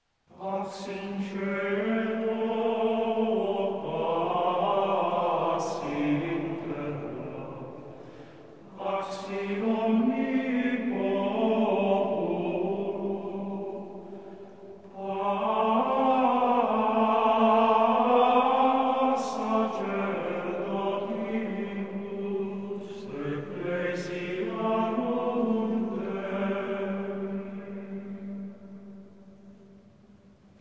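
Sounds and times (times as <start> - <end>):
Ambrosian Gregorian chant: 0.3 - 29.6.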